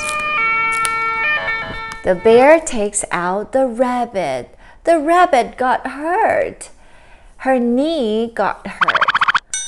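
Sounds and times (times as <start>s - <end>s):
loud electronic-sounding ambulance siren wailing: 0.0s - 2.5s
speech: 2.0s - 6.8s, 7.4s - 9.0s.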